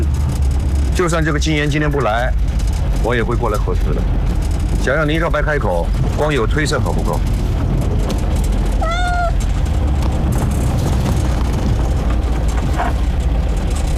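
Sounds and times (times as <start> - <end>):
low rumble: 0.0 - 13.9
speech: 1.0 - 4.2, 4.8 - 7.4
stray cat meowing: 8.8 - 9.4.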